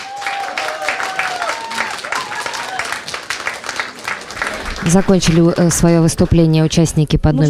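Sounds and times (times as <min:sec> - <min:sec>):
faint voice or cheer: 0:00.0 - 0:03.0
crowd applauding: 0:00.0 - 0:06.4
speech: 0:04.8 - 0:07.4.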